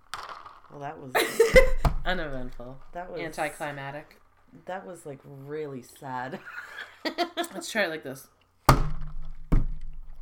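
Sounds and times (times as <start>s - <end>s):
plastic solo cups knocked together in a toast: 0.0s - 3.5s, 8.7s - 10.2s
speech: 0.7s - 8.4s.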